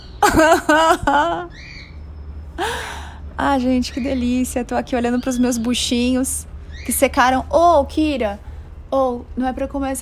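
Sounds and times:
birds squawking: 0:00.0 - 0:00.6, 0:01.2 - 0:02.4, 0:03.4 - 0:07.7
bird chirp: 0:00.0 - 0:02.6, 0:03.4 - 0:07.7
low background hum: 0:00.0 - 0:09.9
laughter: 0:00.2 - 0:01.5
speech: 0:00.3 - 0:01.7, 0:02.6 - 0:09.9.

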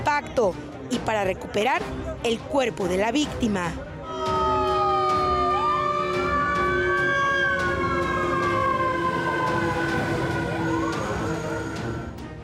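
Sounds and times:
speech: 0:00.1 - 0:04.3
fire truck and ambulance sirens wailing: 0:04.0 - 0:12.2
traffic: 0:05.9 - 0:12.2
heavy engines rumbling: 0:06.0 - 0:12.1.

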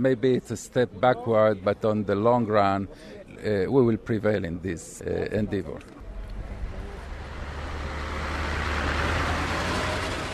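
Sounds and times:
speech: 0:00.0 - 0:06.0
broadband road noise: 0:05.3 - 0:10.3
heavy vehicle engine rumbling: 0:06.0 - 0:10.3.

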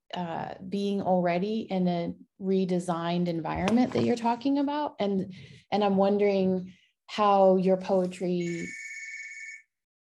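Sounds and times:
speech: 0:00.2 - 0:08.8
landline telephone ringing: 0:08.4 - 0:09.7.

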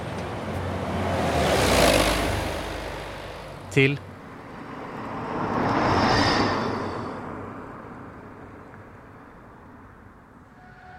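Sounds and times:
single vehicle engine passing outside a shop: 0:00.0 - 0:08.3
steady low hum of street noise outside a shop: 0:00.0 - 0:10.9
speech: 0:03.7 - 0:04.1.

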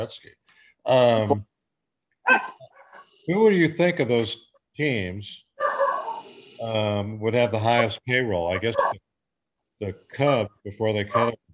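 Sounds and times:
speech: 0:00.0 - 0:01.5, 0:02.3 - 0:05.4, 0:06.6 - 0:09.0, 0:09.8 - 0:11.4
dog barking: 0:02.3 - 0:03.0, 0:05.6 - 0:06.2, 0:08.6 - 0:09.0, 0:11.1 - 0:11.3.

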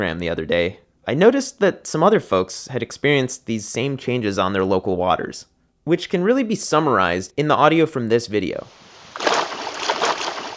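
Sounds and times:
speech: 0:00.0 - 0:08.8
vigorous splashing and churning water: 0:09.0 - 0:10.5.

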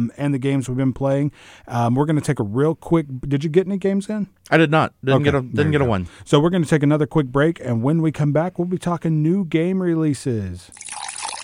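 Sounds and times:
speech: 0:00.0 - 0:10.8
tap water running from a faucet: 0:10.7 - 0:11.4.

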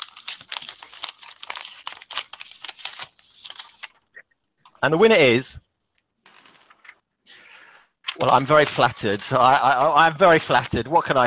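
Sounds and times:
paper envelope being torn open: 0:00.0 - 0:04.0
speech: 0:04.8 - 0:05.6, 0:08.2 - 0:11.2.

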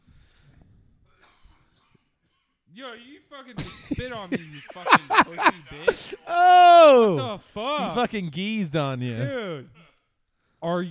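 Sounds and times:
person coughing: 0:01.2 - 0:02.4
speech: 0:02.8 - 0:09.8, 0:10.6 - 0:10.8
laughter: 0:03.6 - 0:08.1.

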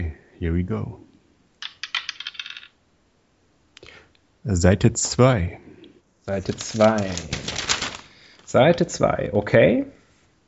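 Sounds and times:
speech: 0:00.0 - 0:01.0, 0:04.4 - 0:07.5, 0:08.5 - 0:10.0
dice clattering across a hard surface: 0:01.6 - 0:02.8, 0:06.4 - 0:08.5.

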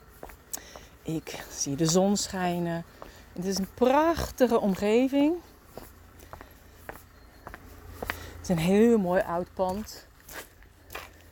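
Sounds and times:
footsteps crunching on a gravel path: 0:00.0 - 0:11.2
soft outdoor hum: 0:00.0 - 0:11.2
speech: 0:01.1 - 0:05.5, 0:08.5 - 0:10.1.

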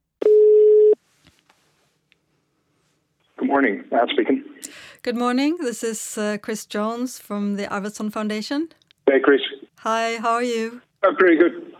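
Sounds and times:
telephone ringback tone: 0:00.2 - 0:01.0
speech: 0:03.6 - 0:11.7.

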